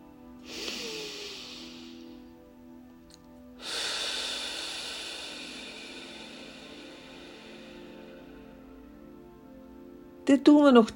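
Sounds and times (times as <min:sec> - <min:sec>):
low steady drone: 0:00.0 - 0:10.2
soft airy inhale through the nose for a guided exercise: 0:00.4 - 0:02.3, 0:03.6 - 0:08.6
long breathy exhale through the mouth for a guided exercise: 0:00.4 - 0:02.4, 0:03.6 - 0:08.7
speech: 0:10.3 - 0:10.9.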